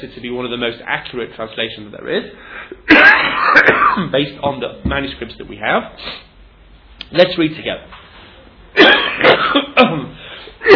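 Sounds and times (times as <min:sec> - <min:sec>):
speech: 0:00.0 - 0:06.3, 0:07.1 - 0:08.0, 0:08.8 - 0:10.7
person coughing: 0:02.8 - 0:04.2, 0:08.8 - 0:10.7.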